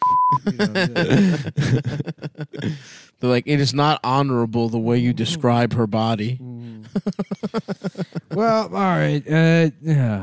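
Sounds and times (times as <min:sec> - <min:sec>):
censor bleep: 0:00.0 - 0:00.4
speech: 0:00.3 - 0:10.2
laughter: 0:00.4 - 0:02.9, 0:06.8 - 0:09.2.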